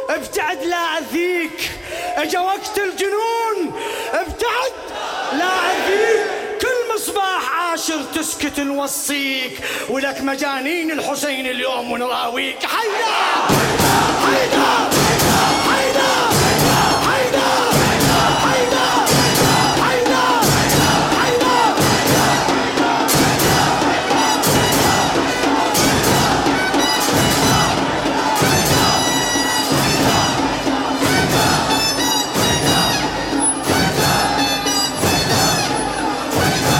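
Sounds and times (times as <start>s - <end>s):
speech: 0.2s - 6.3s, 7.1s - 16.4s
large crowd chanting sacred tatbir slogans: 4.6s - 6.6s, 12.7s - 36.7s.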